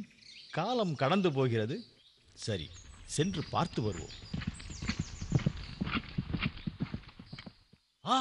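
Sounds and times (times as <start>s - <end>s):
speech: 0.0s - 4.4s, 8.1s - 8.2s
hooves of a trotting Ashvamedha sacrificial horse clip-clopping: 2.6s - 7.8s.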